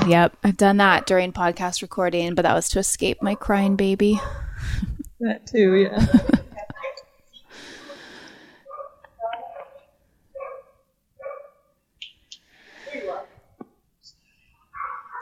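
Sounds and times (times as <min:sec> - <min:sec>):
speech: 0:00.0 - 0:06.4
dog barking in the background: 0:04.2 - 0:04.4, 0:06.8 - 0:07.1, 0:08.6 - 0:11.8, 0:14.7 - 0:15.1
breathy noises: 0:07.3 - 0:10.3, 0:12.4 - 0:15.1.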